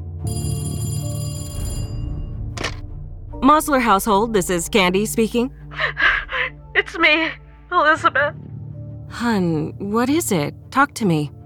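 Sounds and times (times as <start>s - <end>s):
speech: 0.2s - 0.5s, 3.4s - 6.0s, 6.9s - 8.5s, 9.1s - 11.4s
home telephone bell ringing: 0.2s - 2.8s.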